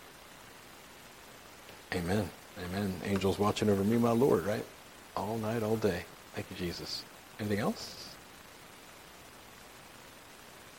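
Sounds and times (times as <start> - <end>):
rain falling outside: 0.0 - 10.7
speech: 1.9 - 8.1.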